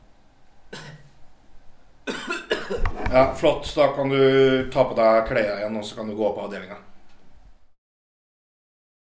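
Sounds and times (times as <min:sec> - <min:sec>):
person coughing forcefully during body search: 0:00.7 - 0:01.1, 0:02.0 - 0:03.0
speech: 0:03.1 - 0:06.9.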